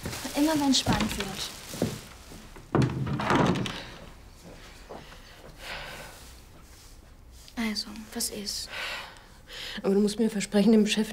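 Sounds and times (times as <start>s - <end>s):
faint rustling: 0.0s - 8.6s
speech: 0.4s - 1.6s, 7.8s - 8.9s, 9.8s - 11.1s
door pushed shut with a heavy thunk: 2.7s - 4.0s.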